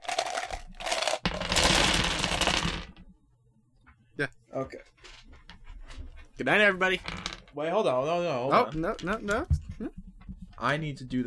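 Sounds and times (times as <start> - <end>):
bunch of dice spilling out and clattering: 0.0 - 3.1, 6.9 - 7.5, 8.6 - 9.6
speech: 4.2 - 4.9, 6.4 - 10.0, 10.6 - 11.2.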